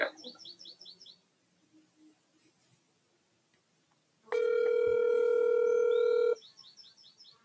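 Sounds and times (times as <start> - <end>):
birds chirping: 0.0 - 1.3, 5.5 - 7.4
electronic phone call tone: 4.3 - 6.4.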